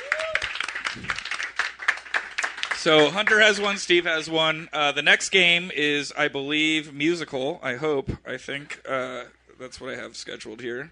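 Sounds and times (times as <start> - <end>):
few people clapping: 0.0 - 4.0
speech: 1.0 - 1.3, 2.8 - 10.9.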